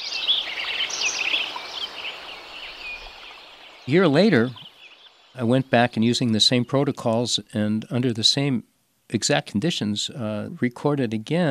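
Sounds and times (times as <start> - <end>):
spring dawn chorus of about ten bird species: 0.0 - 5.8
speech: 3.9 - 4.6, 5.4 - 11.5.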